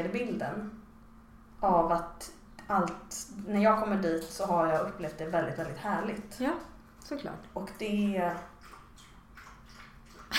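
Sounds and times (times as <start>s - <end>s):
speech: 0.0s - 0.8s, 1.6s - 8.5s
dog lapping water from a bowl: 3.7s - 10.3s.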